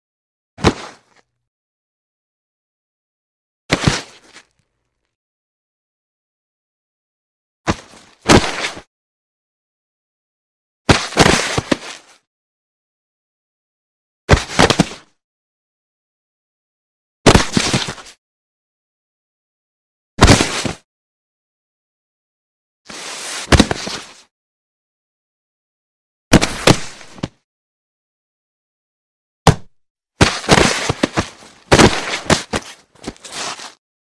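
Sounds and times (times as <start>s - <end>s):
light body falling on ground: 0.6s - 1.2s, 3.7s - 4.5s, 7.7s - 8.9s, 10.9s - 12.2s, 14.3s - 15.1s, 17.3s - 18.2s, 20.2s - 20.8s, 23.4s - 24.2s, 26.3s - 27.4s, 29.5s - 33.8s
body scraping ground: 7.7s - 8.9s, 10.9s - 12.2s, 17.3s - 18.2s, 20.2s - 20.8s, 22.9s - 24.2s, 26.3s - 27.4s, 29.5s - 33.8s.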